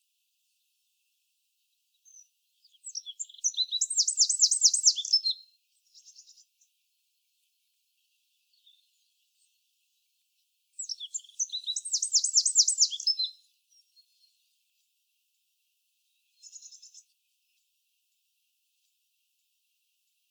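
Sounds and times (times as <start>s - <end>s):
Eurasian wren Troglodytes troglodytes singing: 2.0s - 6.5s, 10.8s - 14.3s, 16.3s - 17.1s.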